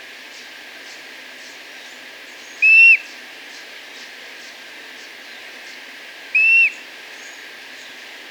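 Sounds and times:
Streak-throated bush-tyrant whistling in Ecuador: 6.4 - 6.8.

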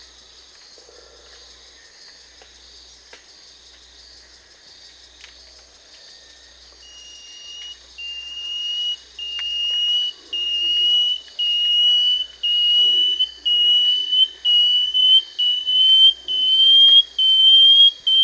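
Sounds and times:
banded antwren Dichrozona cincta singing in Peru: 6.8 - 18.2.

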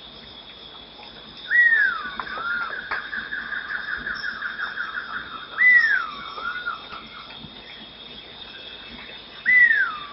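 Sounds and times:
steady high insect drone in Ecuador: 0.0 - 10.1
dusky-tailed flatbill whistled call in Ecuador: 1.5 - 7.0, 9.4 - 10.1.

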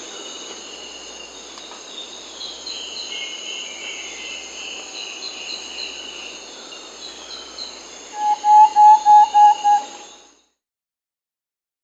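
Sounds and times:
high insect chirring in South America: 0.0 - 10.3
thrush-like antpitta giving hollow whistles in South America: 8.2 - 10.0.

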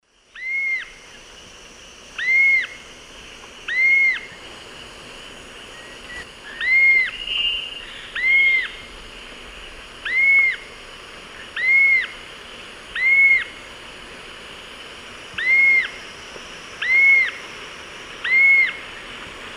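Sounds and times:
Galbula chalcothorax pair calling in eastern lowlands of South America: 2.2 - 4.4, 5.6 - 12.3, 12.9 - 13.7, 15.3 - 16.0, 16.7 - 17.5, 18.2 - 19.1.

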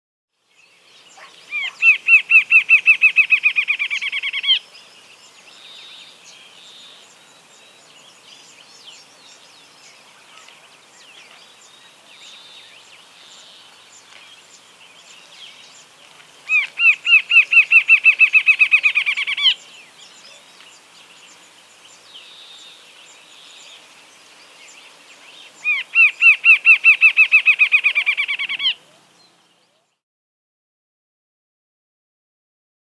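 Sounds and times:
Rufous-capped antshrike Thamnophilus ruficapillus calling in the Andes, South America: 1.2 - 4.6, 16.5 - 19.7, 25.6 - 29.2.

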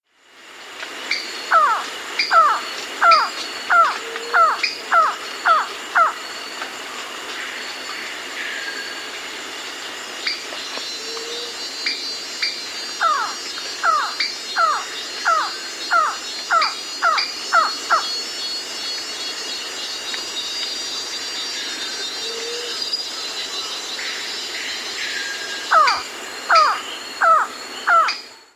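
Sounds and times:
Band-tailed antshrike calling in South America: 1.1 - 6.3, 12.4 - 18.2, 25.6 - 28.3.

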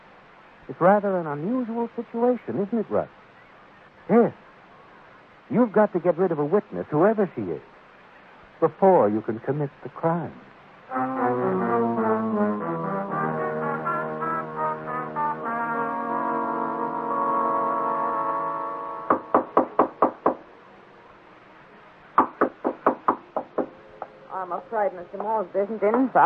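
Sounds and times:
speech: 0.7 - 3.2, 4.1 - 4.4, 5.5 - 7.7, 8.6 - 11.6, 24.4 - 26.2
sustained droning music: 10.9 - 19.3
firm rapid knocking on a door: 19.1 - 20.4, 22.2 - 23.8.

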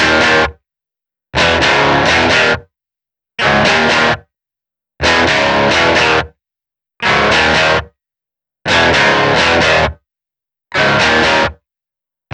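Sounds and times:
rock guitar: 0.0 - 0.6, 1.4 - 2.6, 3.4 - 4.2, 5.0 - 6.3, 7.0 - 7.9, 8.7 - 10.0, 10.7 - 11.6.

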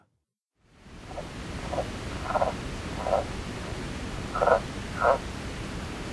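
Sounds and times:
steady hiss of background noise: 0.7 - 6.1
Sierra Madre yellow-legged frog calling with short grating notes in North America: 1.1 - 3.3, 4.3 - 5.3.

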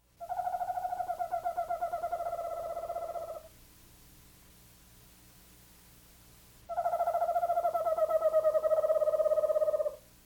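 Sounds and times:
eastern screech owl whinny whistled tremolo: 0.2 - 3.5, 6.7 - 10.0.

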